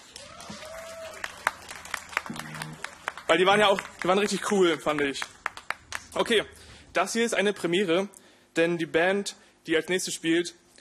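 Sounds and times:
crowd noise: 0.0s - 5.0s
audience applauding in a large space: 0.0s - 6.4s
speech: 3.3s - 5.4s, 6.1s - 10.6s.

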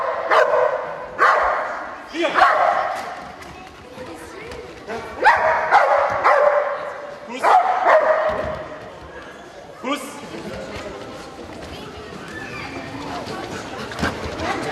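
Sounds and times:
animal shelter dog barking during a demonstration: 0.0s - 1.8s, 2.4s - 3.0s, 5.2s - 8.4s
low murmur: 0.0s - 14.7s.

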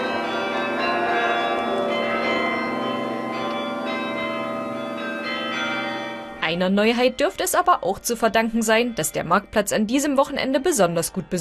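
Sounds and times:
tower carillon playing a melody of overlapping bell tones: 0.0s - 6.9s
speech: 6.5s - 11.3s.

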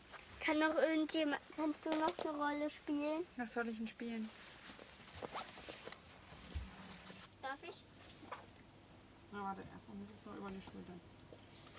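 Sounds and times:
steady hiss: 0.0s - 11.7s
speech: 0.5s - 4.5s, 9.3s - 11.2s
zipper being closed on clothing: 5.2s - 5.6s.

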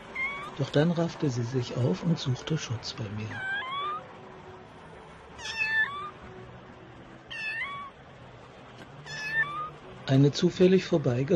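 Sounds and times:
small cat meowing: 0.1s - 0.6s, 3.3s - 4.1s, 5.4s - 6.2s, 7.3s - 8.0s, 9.0s - 9.8s
speech: 0.6s - 3.6s, 10.1s - 11.3s.

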